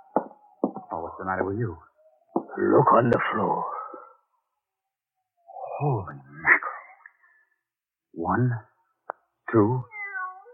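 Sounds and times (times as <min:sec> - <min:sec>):
speech: 0:01.2 - 0:01.9, 0:02.6 - 0:03.7, 0:05.8 - 0:06.6, 0:08.2 - 0:08.7, 0:09.5 - 0:09.9
cat meowing: 0:09.8 - 0:10.5.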